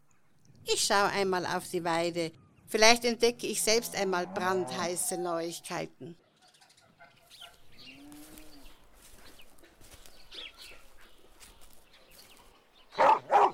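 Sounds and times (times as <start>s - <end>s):
soft farmyard ambience: 0.0s - 13.5s
speech: 0.7s - 6.2s
dog barking: 13.0s - 13.5s.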